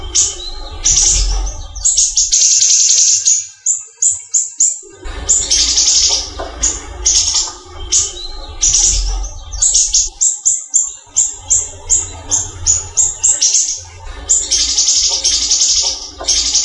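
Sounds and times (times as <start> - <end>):
steady low background rumble: 0.0 - 2.4, 4.9 - 10.2, 11.0 - 16.6
small-leaf type cucak ijo leafbird song: 0.0 - 16.6.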